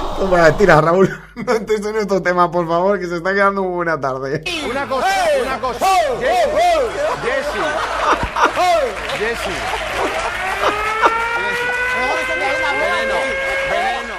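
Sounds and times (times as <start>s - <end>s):
speech: 0.2s - 10.8s
lively crowd of chattering voices: 4.5s - 14.1s
people laughing: 4.5s - 14.1s
bumper car ride warning alarm: 10.7s - 14.1s.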